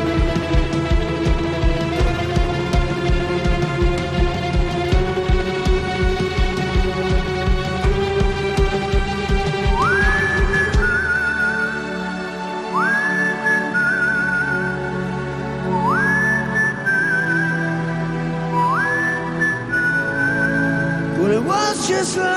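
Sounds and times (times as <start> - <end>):
backing music: 0.0 - 22.3
person whistling rising notes: 9.6 - 22.3.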